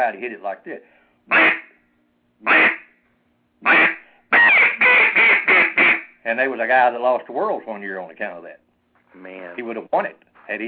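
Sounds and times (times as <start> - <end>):
speech: 0.0 - 1.6, 2.4 - 2.8, 3.6 - 3.9, 6.3 - 10.6
duck call quacks overblown into a squeak: 1.3 - 1.8, 2.4 - 2.9, 3.6 - 6.1.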